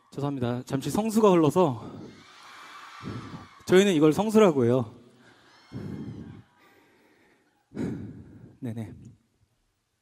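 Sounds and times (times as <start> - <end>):
speech: 0.1 - 2.0, 3.7 - 5.0, 8.6 - 9.0
heavy breathing into microphone: 5.3 - 8.6.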